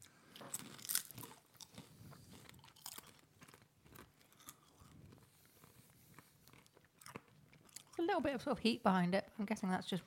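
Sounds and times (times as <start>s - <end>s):
crunching and chewing of a cheesy crisp snack: 0.0s - 8.0s
speech: 8.0s - 10.0s.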